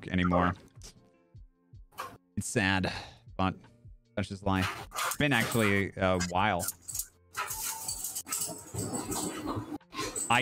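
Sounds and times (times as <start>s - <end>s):
speech: 0.0s - 1.0s, 2.4s - 7.0s, 8.8s - 10.4s
dog giving short barks in a house: 4.6s - 5.8s.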